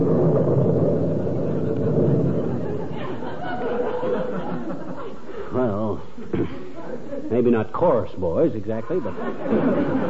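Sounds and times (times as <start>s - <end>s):
rolling thunder: 0.0s - 4.9s
laughter: 2.4s - 7.6s, 8.7s - 10.0s
speech: 7.4s - 10.0s.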